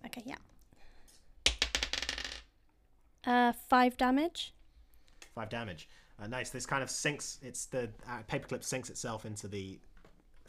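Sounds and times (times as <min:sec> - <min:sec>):
dice rolling on a table: 0:01.4 - 0:02.6
speech: 0:03.3 - 0:04.6, 0:05.4 - 0:09.9.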